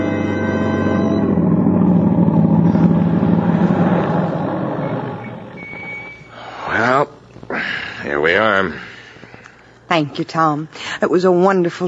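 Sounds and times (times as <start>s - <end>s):
car engine humming as car drives up and stops: 0.0s - 8.0s
speech: 10.0s - 11.8s.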